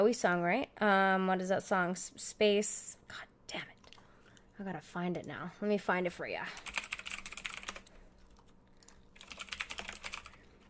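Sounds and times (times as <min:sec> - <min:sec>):
speech: 0:00.0 - 0:03.8, 0:04.6 - 0:06.8
typing on a computer keyboard: 0:06.6 - 0:10.6.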